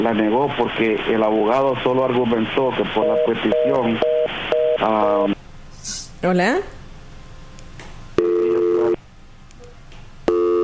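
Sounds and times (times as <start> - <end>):
speech: 0.0 - 5.4, 6.2 - 6.8
telephone busy signal after a dropped call: 2.9 - 5.4, 8.2 - 9.0, 10.3 - 10.6.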